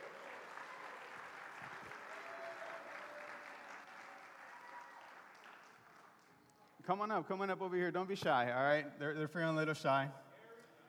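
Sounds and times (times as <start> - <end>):
crowd applauding young Boy Scouts coming on stage: 0.0 - 6.4
speech: 6.9 - 10.2.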